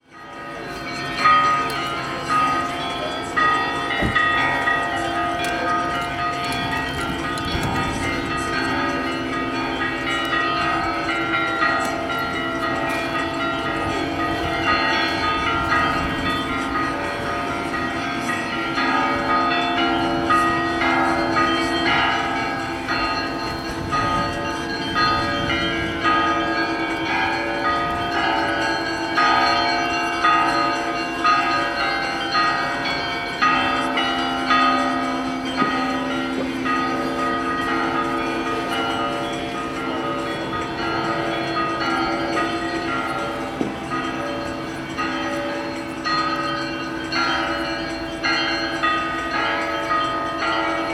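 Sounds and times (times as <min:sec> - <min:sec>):
bells ringing in Sergiyev Posad: 0:00.0 - 0:50.9
street ambience in Sergiyev Posad: 0:00.0 - 0:50.9.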